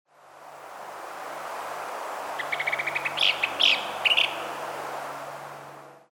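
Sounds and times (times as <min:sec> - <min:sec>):
Loggerhead kingbird calling on Abaco Island Bahamas: 0:02.4 - 0:04.4.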